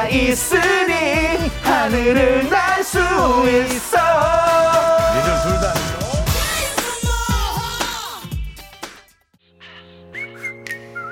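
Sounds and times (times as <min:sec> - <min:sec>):
dense beat-heavy pop music: 0:00.0 - 0:09.2
speech: 0:00.1 - 0:04.5
whistled tune from a song intro: 0:09.6 - 0:11.0.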